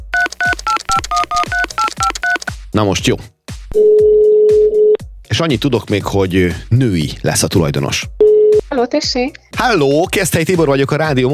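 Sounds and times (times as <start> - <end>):
touch-tone keypad beeps dialing a mobile phone number: 0.2 - 2.5, 3.8 - 5.0, 8.2 - 8.6
speech: 2.8 - 4.0, 5.4 - 11.3.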